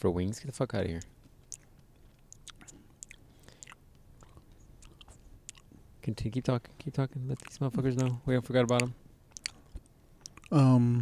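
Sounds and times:
speech: 0.0 - 1.2, 6.1 - 9.0, 10.5 - 10.9
soft wet chewing with clicks and smacks: 1.0 - 10.6.

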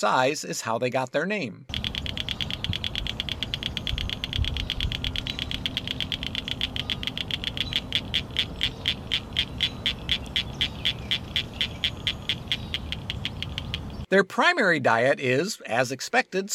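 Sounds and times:
speech: 0.0 - 1.8, 14.1 - 16.5
low rumbling background: 1.7 - 14.1
male cricket frog calling in rapid clicks from vegetation: 1.7 - 14.1.

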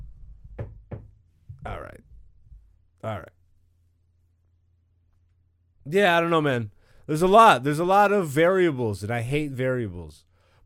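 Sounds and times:
knuckles knocking on wood: 0.5 - 1.2
speech: 3.0 - 3.4, 5.9 - 10.6.

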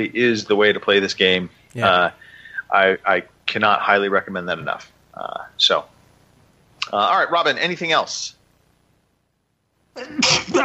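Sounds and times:
speech: 0.0 - 5.9, 6.8 - 8.4, 10.0 - 10.6
sneeze: 10.0 - 10.6.

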